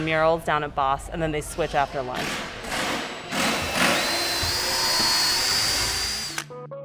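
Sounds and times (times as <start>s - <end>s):
speech: 0.0s - 2.5s
power drills and drivers whining as people build benches and a bookshelf: 2.7s - 6.5s.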